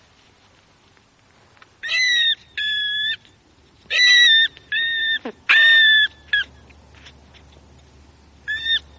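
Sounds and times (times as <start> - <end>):
brown rat squeals: 1.8 - 3.2, 3.9 - 6.5, 8.5 - 8.9.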